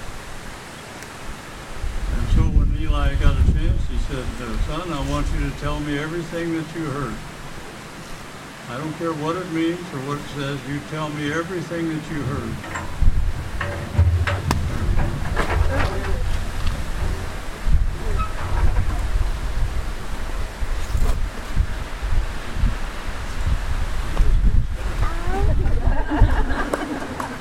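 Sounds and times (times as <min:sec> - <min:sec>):
wind blowing fast outdoors: 0:00.0 - 0:27.3
speech: 0:02.8 - 0:07.3, 0:08.7 - 0:13.0
laughter: 0:25.2 - 0:27.3.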